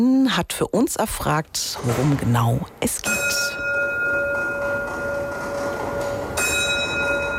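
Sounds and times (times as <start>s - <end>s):
speech: 0.0s - 3.6s
bell of the monumental clock in St. Mary's Church ringing: 3.0s - 7.3s.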